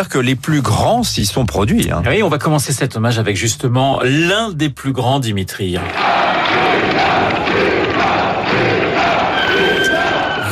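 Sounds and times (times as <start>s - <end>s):
speech: 0.0s - 8.6s
large concert audience cheering: 5.8s - 10.5s.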